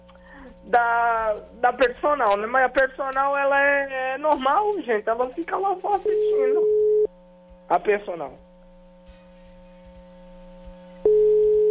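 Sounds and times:
speech: 0.7s - 6.8s, 7.7s - 8.4s
telephone ringing tone while placing a call: 6.0s - 7.1s, 11.0s - 11.6s.

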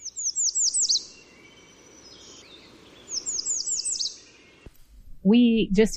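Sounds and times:
American Redstart singing: 0.0s - 4.7s
faint hiss: 0.0s - 5.9s
speech: 5.2s - 5.9s.

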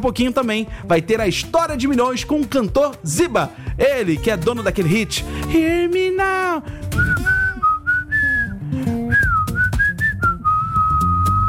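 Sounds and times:
speech: 0.0s - 6.8s
soft music: 0.0s - 9.6s
person whistling a pop melody: 6.9s - 11.4s.

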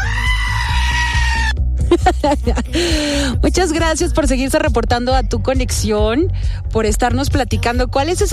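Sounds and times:
goat screaming: 0.0s - 1.6s
low rumble: 0.3s - 8.3s
laughter: 1.8s - 3.3s
speech: 2.2s - 8.3s.

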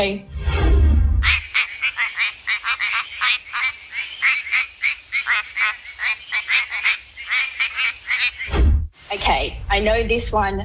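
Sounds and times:
speech: 0.0s - 0.3s, 9.3s - 10.6s
quacking frog calling in duck-like notes: 1.2s - 8.5s.

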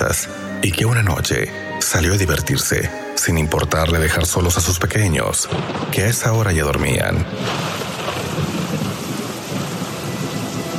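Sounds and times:
speech: 0.2s - 8.5s
heavy rain pouring during the rainy season: 3.8s - 10.7s
low continuous rumble of thunder: 5.5s - 10.7s.

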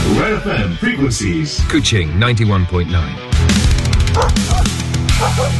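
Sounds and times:
speech: 0.1s - 5.5s
aggressive dog barking: 4.1s - 5.5s.

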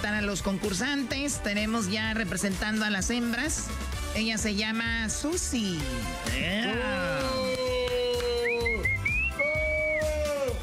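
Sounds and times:
speech: 0.0s - 7.4s
sharp shrill wolf whistles: 8.2s - 10.4s.

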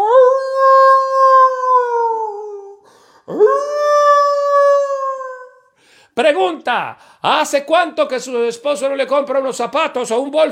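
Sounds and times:
wolf howls sound effect: 0.0s - 5.6s
speech: 6.7s - 10.5s.

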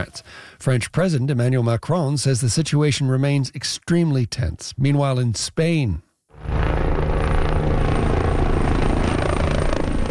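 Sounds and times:
speech: 0.0s - 6.0s
firefighting helicopter rotor and engine water-bombing wildfire flames: 6.4s - 10.0s.

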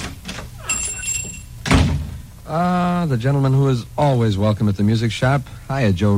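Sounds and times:
high ringing tone as music shop door opens: 0.6s - 1.6s
speech: 2.5s - 6.1s.

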